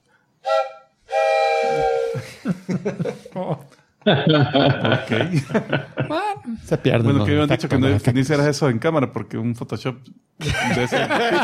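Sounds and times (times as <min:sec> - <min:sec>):
train horn sounding as a train arrives: 0:00.5 - 0:02.2
laughter: 0:02.0 - 0:08.2, 0:10.4 - 0:11.4
speech: 0:02.5 - 0:11.4.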